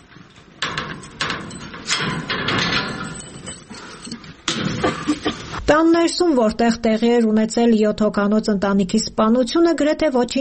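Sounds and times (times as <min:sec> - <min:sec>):
closed gate and house door being opened: 0:00.0 - 0:05.6
speech: 0:05.7 - 0:10.3.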